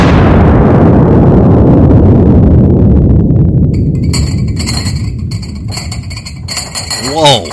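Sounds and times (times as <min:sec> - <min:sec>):
loud booming explosion: 0:00.0 - 0:03.7
faint metallic pings and debris-like clinks: 0:03.8 - 0:07.5
speech: 0:07.2 - 0:07.5.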